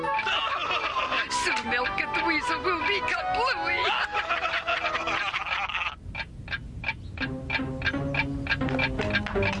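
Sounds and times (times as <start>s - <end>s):
laughter: 0.2s - 2.0s, 3.7s - 6.0s
clock ticking: 1.4s - 3.5s, 7.2s - 9.5s
speech: 1.4s - 4.6s.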